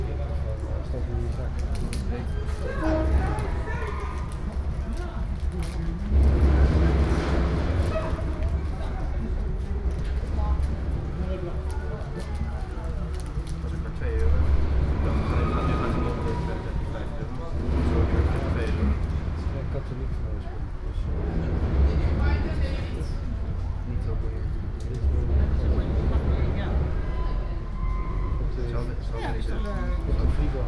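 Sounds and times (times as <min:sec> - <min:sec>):
steady low rumble: 0:00.0 - 0:15.3, 0:16.0 - 0:27.8
passengers chattering while boarding a ferry: 0:00.0 - 0:30.6.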